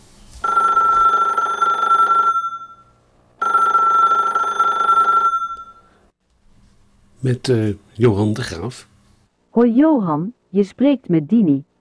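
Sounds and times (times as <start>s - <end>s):
telephone ringing with an electronic trill: 0.4s - 6.0s
speech: 7.2s - 8.9s, 9.6s - 11.7s.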